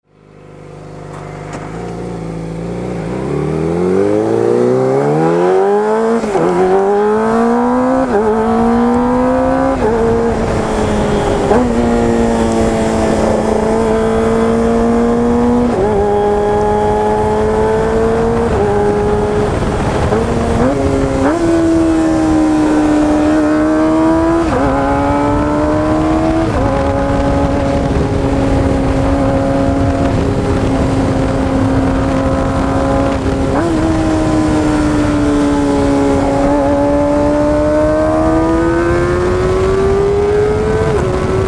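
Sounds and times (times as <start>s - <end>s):
ZX25R motorcycle with silent muffler accelerating: 0.1s - 41.4s.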